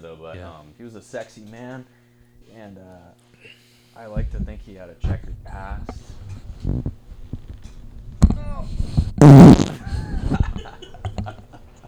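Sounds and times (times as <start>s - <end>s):
speech: 0.0s - 6.9s, 8.5s - 10.0s
fart into microphone: 4.2s - 11.8s.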